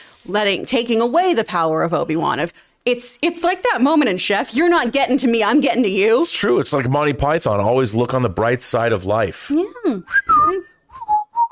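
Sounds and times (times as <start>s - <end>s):
speech: 0.2s - 10.7s
two people whistling a short bright tune: 10.1s - 11.4s.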